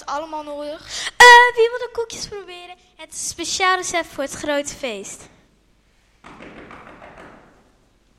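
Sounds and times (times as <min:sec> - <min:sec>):
speech: 0:00.1 - 0:05.4
postman knocking on a closed door: 0:06.2 - 0:07.8.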